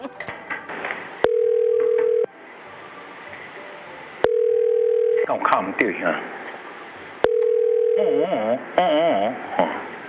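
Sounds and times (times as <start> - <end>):
phone line click: 1.2 - 2.3, 4.2 - 5.2, 7.2 - 8.0
single-pitched phone ringing tone: 1.2 - 2.3, 4.2 - 5.5, 7.2 - 8.6
speech: 5.5 - 6.4, 8.0 - 9.8.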